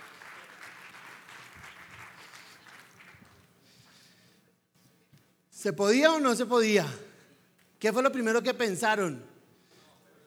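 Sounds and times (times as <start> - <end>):
audience applause: 0.0 - 3.5
speech: 5.6 - 7.0, 7.8 - 9.3.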